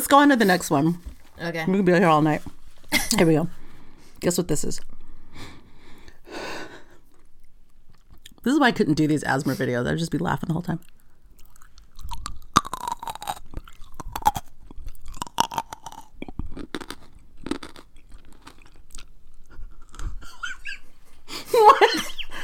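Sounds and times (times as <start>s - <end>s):
speech: 0.1s - 3.6s, 4.2s - 5.0s, 8.4s - 11.0s
crunchy chewing of pickled radish: 10.8s - 20.2s.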